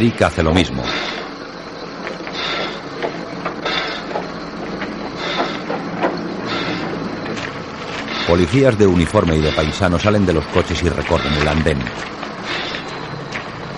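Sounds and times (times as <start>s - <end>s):
speech: 0.0s - 1.3s, 8.3s - 12.2s
steady mechanical rumble of a railway carriage at a station platform: 0.0s - 13.7s
metallic clanks and ratcheting knocks: 3.0s - 8.0s.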